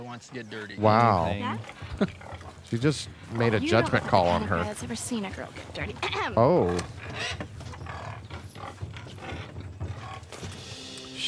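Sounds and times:
speech: 0.2 - 7.7
warthog grunting and snorting: 0.8 - 5.0, 5.9 - 10.4.

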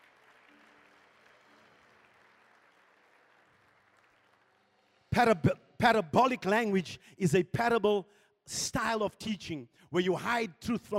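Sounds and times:
audience clapping: 0.0 - 5.4
speech: 5.2 - 10.9.

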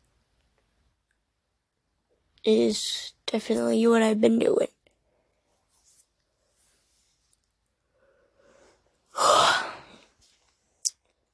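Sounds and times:
speech: 2.4 - 4.8
long breathy yawn: 9.2 - 10.0.

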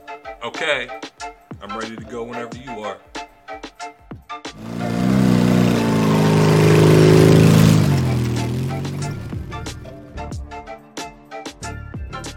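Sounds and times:
speech: 0.4 - 3.1
dirt bike engines revving: 4.6 - 10.1.

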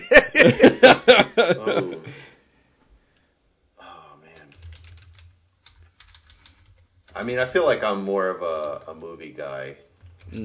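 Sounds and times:
laughter: 0.0 - 2.2
speech: 0.4 - 2.2, 7.2 - 10.4
typing on a computer keyboard: 4.4 - 7.4.

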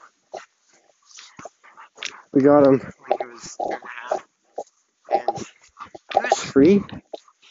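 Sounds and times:
speech: 2.3 - 4.2, 6.6 - 7.0
decent-sized dog whimpering and yipping: 2.8 - 7.2.

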